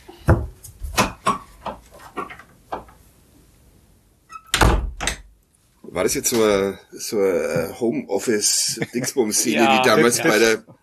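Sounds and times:
wooden door thudding and clicking: 4.5 - 5.3
speech: 6.0 - 10.8
laughter: 8.4 - 10.6.

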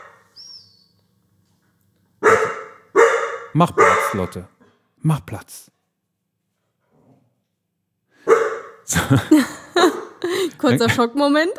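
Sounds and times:
dog barking: 0.0 - 0.3, 2.2 - 4.4, 8.2 - 8.8
speech: 3.6 - 5.8, 8.9 - 11.5
laughter: 8.9 - 11.2.

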